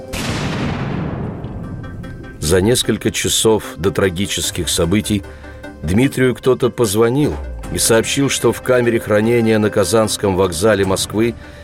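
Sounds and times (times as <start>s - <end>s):
explosion of an explosive device inside a briefcase: 0.1s - 2.4s
speech: 2.5s - 11.6s.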